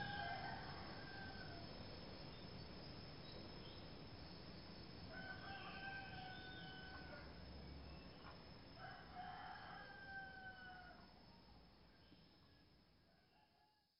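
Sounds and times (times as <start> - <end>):
rooster crowing in long drawn-out calls: 0.0 - 1.7, 5.1 - 7.3, 8.8 - 11.1
insect hum: 0.0 - 13.8.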